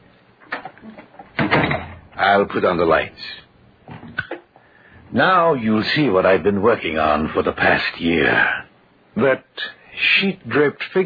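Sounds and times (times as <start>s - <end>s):
door opening with a rattling clunk: 0.5s - 2.0s
speech: 2.2s - 3.4s, 5.2s - 8.6s, 9.2s - 11.0s.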